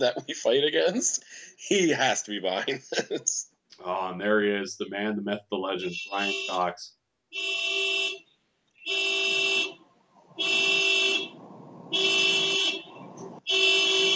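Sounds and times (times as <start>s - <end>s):
laughter: 0.0s - 4.1s, 5.8s - 6.4s
speech: 0.0s - 7.7s
car alarm of a building resident honking outside: 5.8s - 14.1s
low rumble: 10.2s - 13.4s.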